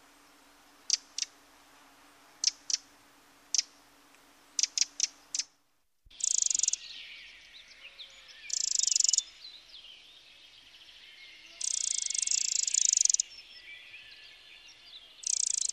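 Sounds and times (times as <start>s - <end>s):
background hiss: 0.0s - 15.7s
Eurasian wren song with rapid rattling trills: 0.9s - 1.3s, 4.6s - 5.5s, 6.1s - 15.7s
Eurasian wren ticks: 0.9s - 1.3s, 3.6s - 5.5s, 6.2s - 6.8s, 8.5s - 9.2s, 11.6s - 13.2s, 15.2s - 15.7s.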